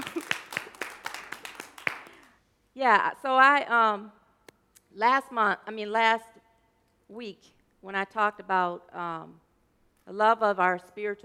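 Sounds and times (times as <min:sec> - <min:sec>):
small audience clapping: 0:00.0 - 0:02.4
speech: 0:02.8 - 0:04.2, 0:05.0 - 0:06.4, 0:07.1 - 0:09.4, 0:10.1 - 0:11.2.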